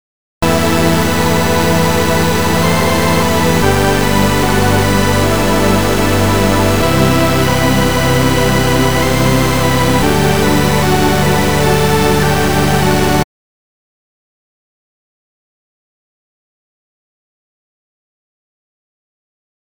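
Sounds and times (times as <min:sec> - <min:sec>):
sub bass oscillator tone: 0:00.4 - 0:13.2.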